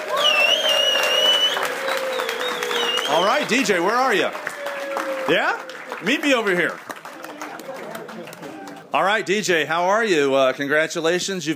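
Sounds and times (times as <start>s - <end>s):
sustained cheering: 0.0s - 8.9s
university audience clapping for a student award winner: 0.0s - 9.1s
speech: 3.2s - 4.5s, 5.3s - 6.9s, 8.9s - 11.5s.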